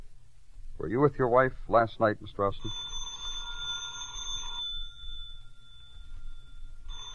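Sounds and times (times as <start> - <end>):
speech: 0.8 - 2.9
telephone ringing with a bright electronic tone: 2.4 - 7.1.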